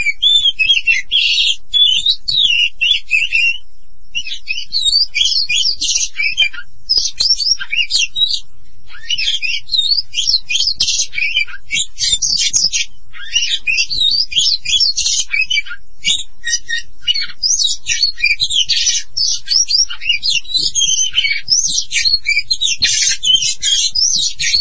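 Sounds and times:
Oriental magpie-robin singing: 0.0s - 24.6s.

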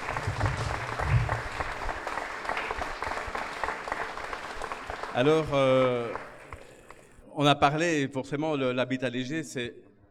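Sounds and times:
audience applause at a public talk: 0.0s - 7.1s
speech: 5.2s - 6.3s, 7.4s - 9.8s.

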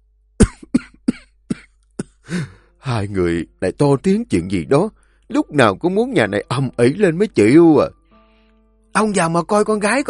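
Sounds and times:
man in his fifties coughing: 0.4s - 2.6s
speech: 2.3s - 8.0s, 9.0s - 10.0s.

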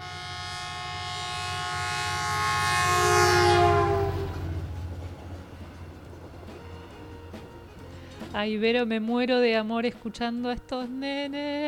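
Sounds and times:
loud sustained train horn: 0.0s - 4.8s
train cars rumbling pulling out of a station platform: 0.3s - 8.8s
speech: 8.4s - 11.6s.

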